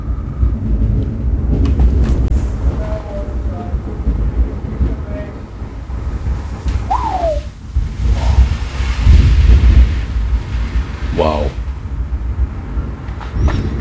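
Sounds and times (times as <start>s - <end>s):
deep rolling thunder: 0.0s - 13.7s
heavy torrential downpour: 0.0s - 13.7s
man exclaiming: 11.1s - 11.6s.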